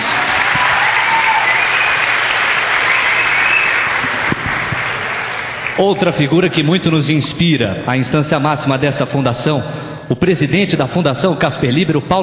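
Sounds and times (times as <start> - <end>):
large audience applauding: 0.0 - 6.0
speech: 5.8 - 12.2.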